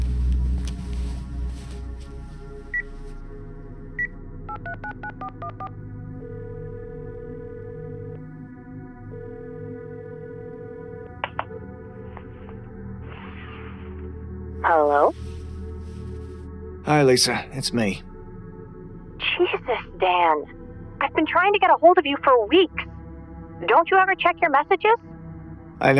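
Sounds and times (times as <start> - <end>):
low rumbling background: 0.0 - 5.0, 5.7 - 24.5
phone keypad beeps as a number is dialed: 4.5 - 5.7
speech: 4.6 - 6.0, 14.7 - 15.3, 16.9 - 18.1, 19.4 - 22.8, 23.6 - 25.1, 25.8 - 25.9.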